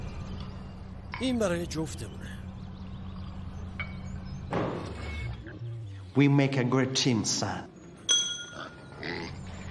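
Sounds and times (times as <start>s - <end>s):
speech: 1.2s - 2.4s, 6.2s - 7.7s
faint clinking sound: 8.0s - 8.9s
pig oinking and grunting: 8.6s - 9.6s.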